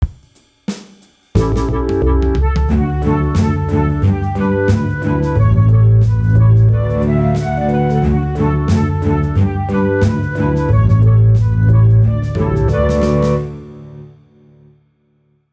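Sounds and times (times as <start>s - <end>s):
bass performance: 1.4s - 14.2s.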